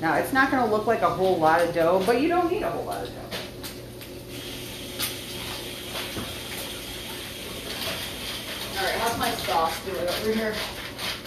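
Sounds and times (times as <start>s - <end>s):
speech: 0.0s - 3.4s, 8.8s - 10.8s
cold tap water running: 0.0s - 11.2s
hands rinsed under cold tap water: 4.4s - 10.6s.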